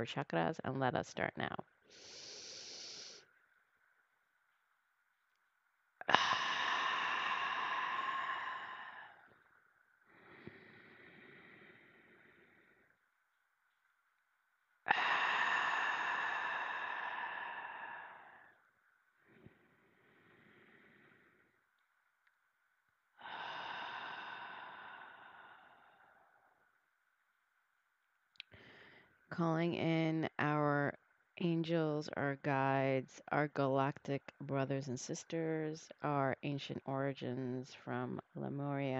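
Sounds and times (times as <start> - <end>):
speech: 0.0 - 2.2, 29.4 - 38.9
deep breathing from the diaphragm during a guided meditation: 1.9 - 3.2, 6.1 - 13.1, 14.9 - 21.7, 23.2 - 26.7, 28.5 - 29.2.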